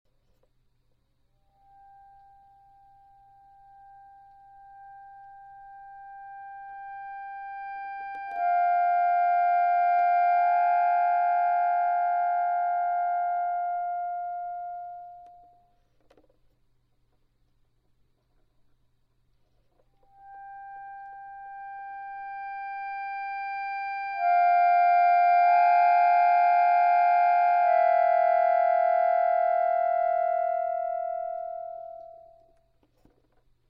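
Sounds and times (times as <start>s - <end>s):
real reed instrument: 4.6s - 15.1s, 20.0s - 32.5s.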